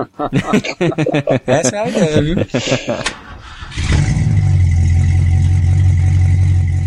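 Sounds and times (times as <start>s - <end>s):
speech: 0.0s - 3.2s
laughter: 0.0s - 3.4s
big V8 car engine revving with a deep steady rumble: 0.3s - 6.8s
big V8 car engine cranking over: 2.5s - 6.8s.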